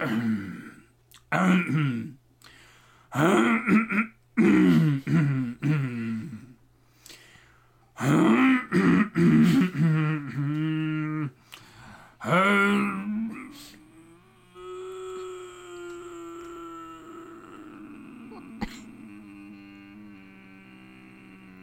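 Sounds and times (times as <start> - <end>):
person clearing throat: 0.0 - 2.2, 3.2 - 6.6, 8.0 - 11.3, 17.3 - 20.1.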